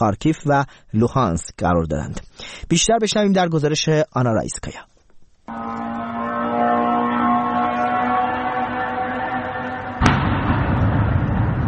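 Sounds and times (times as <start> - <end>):
speech: 0.0 - 4.9
suicide drone engine buzzing whine: 5.5 - 11.6
low rumbling explosion aftermath: 10.0 - 11.6
sharp explosion of a suicide drone: 10.0 - 11.6.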